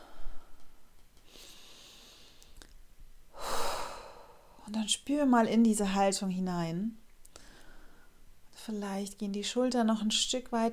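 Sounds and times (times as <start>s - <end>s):
deep airy breaths during a standing posture exercise: 0.0s - 2.7s, 3.3s - 4.6s, 7.3s - 8.3s
speech: 4.7s - 7.0s, 8.7s - 10.7s.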